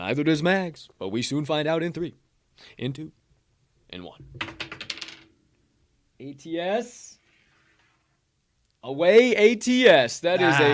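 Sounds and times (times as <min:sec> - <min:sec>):
speech: 0:00.1 - 0:03.2, 0:03.9 - 0:04.7, 0:06.2 - 0:07.2, 0:08.8 - 0:10.7
dice tumbling across a hard surface: 0:04.3 - 0:05.4.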